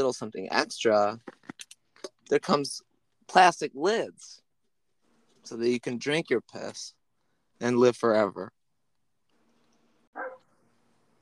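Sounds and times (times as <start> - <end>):
speech: 0.0 - 1.4, 2.3 - 4.4, 5.4 - 7.0, 7.6 - 8.6
dog barking: 10.2 - 10.5.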